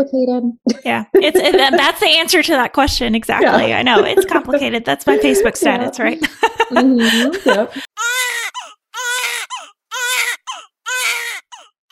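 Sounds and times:
speech: 0.0s - 8.1s
laughter: 1.1s - 2.3s, 3.3s - 7.8s
infant wailing: 8.0s - 11.8s.

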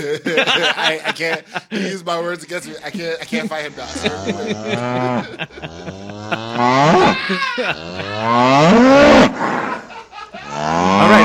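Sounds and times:
speech: 0.0s - 9.6s
laughter: 0.0s - 11.2s
cow giving a long aggressive moo: 3.8s - 9.7s, 10.5s - 11.2s.

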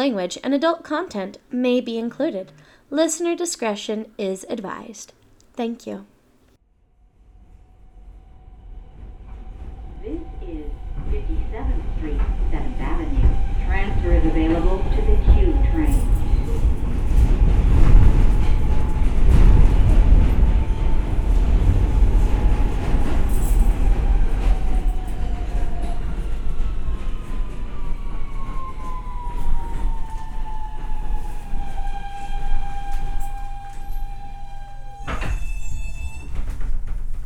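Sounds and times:
speech: 0.0s - 6.1s, 13.8s - 16.0s
express subway train roaring along: 6.8s - 37.2s
high whining subway train motor tones: 7.3s - 36.6s.

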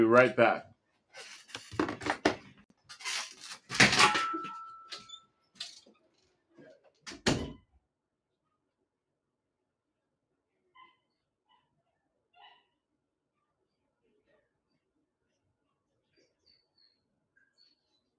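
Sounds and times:
speech: 0.0s - 1.8s
clattering handling noises: 1.2s - 6.0s
door shutting with a solid thud: 7.1s - 7.6s.

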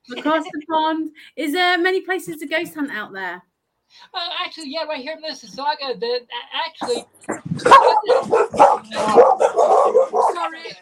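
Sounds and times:
speech: 0.1s - 10.7s
dog barking in Mississauga Ontario Canada: 7.6s - 10.7s.

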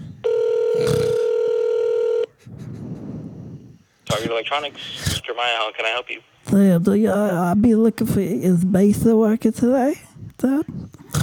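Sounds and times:
ringback tone over a phone line to an electronics store: 0.2s - 2.3s
speech: 4.1s - 10.8s.

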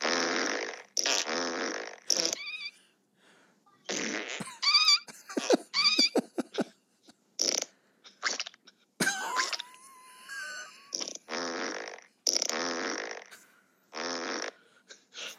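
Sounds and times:
loud fart sound effects: 0.0s - 2.7s, 3.9s - 6.1s, 7.4s - 8.6s, 9.2s - 14.6s
laughter: 4.4s - 6.8s.

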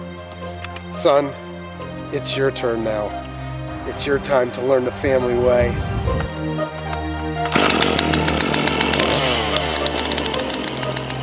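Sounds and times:
speech: 0.9s - 1.4s, 2.1s - 3.3s, 3.9s - 6.7s
chainsaw idling and revving: 7.4s - 11.2s.

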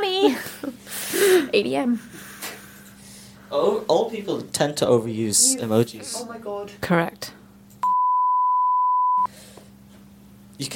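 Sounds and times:
speech: 0.2s - 0.5s, 1.5s - 2.2s, 3.5s - 7.4s, 10.6s - 10.7s
electronic censor bleep: 7.8s - 9.3s.

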